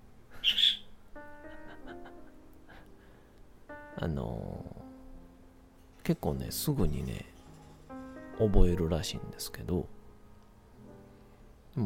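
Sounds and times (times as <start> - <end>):
pet parakeet chirping and warbling: 0.4 - 1.0
laughter: 1.4 - 2.9
speech: 4.0 - 4.8, 6.1 - 7.3, 8.4 - 10.0.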